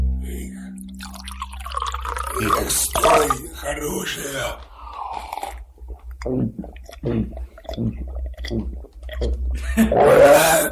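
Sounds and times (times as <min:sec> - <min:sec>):
low steady hum: 0:00.0 - 0:10.7
drink pouring into a glass: 0:01.0 - 0:03.5
speech: 0:02.4 - 0:04.7, 0:06.2 - 0:08.8, 0:09.8 - 0:10.7.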